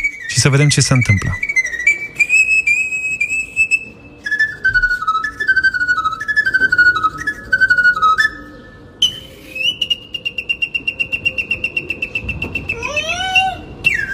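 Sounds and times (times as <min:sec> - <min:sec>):
pan flute melody played from a balcony: 0:00.0 - 0:14.1
speech: 0:00.4 - 0:01.5.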